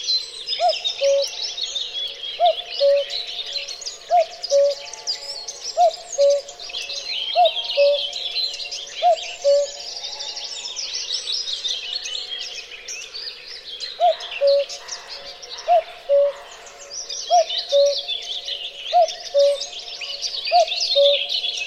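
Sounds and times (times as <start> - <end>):
chorus of other birds: 0.0 - 21.6
cuckoo calling two-note cu-ckoo: 0.6 - 10.8, 14.0 - 21.6.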